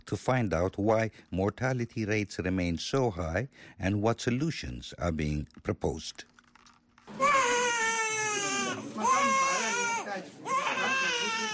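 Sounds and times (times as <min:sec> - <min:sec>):
speech: 0:00.1 - 0:06.3
newborn baby girl crying: 0:07.1 - 0:11.5.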